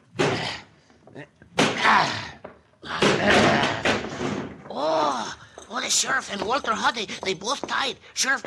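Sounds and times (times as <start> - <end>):
speech: 1.2 - 2.2, 5.9 - 8.4
locked shack door at a camp being battered and forced open: 1.6 - 4.8.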